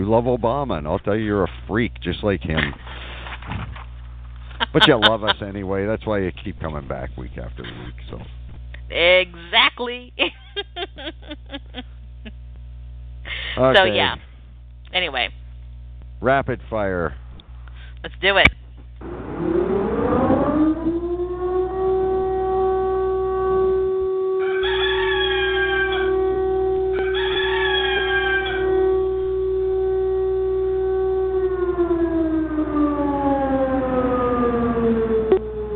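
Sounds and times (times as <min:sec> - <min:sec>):
speech: 0:00.1 - 0:02.9, 0:04.7 - 0:12.4, 0:13.6 - 0:14.3, 0:14.9 - 0:15.4, 0:16.2 - 0:17.2, 0:18.0 - 0:19.6
laughter: 0:02.4 - 0:02.9, 0:04.5 - 0:08.2, 0:10.2 - 0:11.9
wailing siren: 0:19.0 - 0:35.7
rooster crowing: 0:24.0 - 0:30.4.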